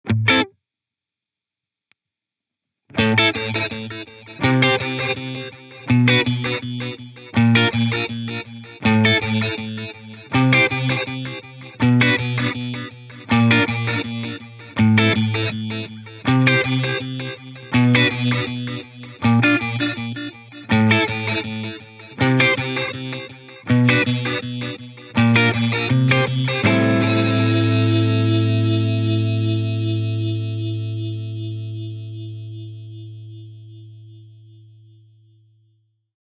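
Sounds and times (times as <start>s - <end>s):
lo-fi digital music: 3.3s - 34.2s.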